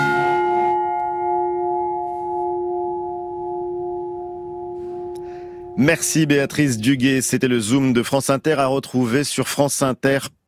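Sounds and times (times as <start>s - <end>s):
single church bell strike: 0.0s - 7.2s
speech: 5.8s - 10.4s.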